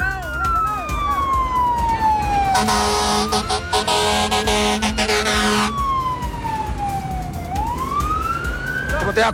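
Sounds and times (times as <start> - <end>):
fire engine siren wailing at an accident scene: 0.1 - 9.3
steady traffic rumble: 1.0 - 9.2
blaring air horn blast: 2.6 - 5.8.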